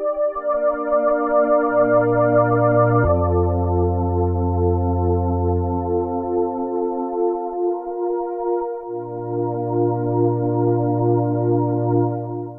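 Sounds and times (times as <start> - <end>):
Roland JX-8P synthesizer choir sound: 0.1 - 7.7, 8.7 - 12.5.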